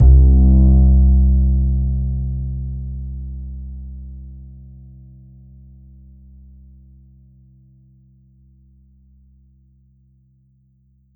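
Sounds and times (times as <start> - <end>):
acoustic bass C2 note from a synthesizer card: 0.0 - 7.8.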